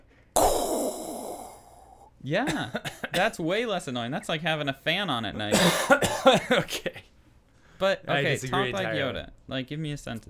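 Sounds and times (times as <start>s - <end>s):
person demonstrating exaggerated heavy breathing: 0.4s - 2.1s
speech: 2.2s - 7.0s, 7.8s - 10.2s.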